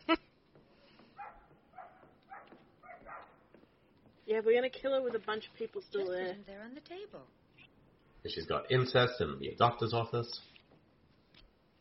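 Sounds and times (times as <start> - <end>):
dog barking: 1.1 - 3.5
speech: 4.3 - 7.4, 8.2 - 10.5.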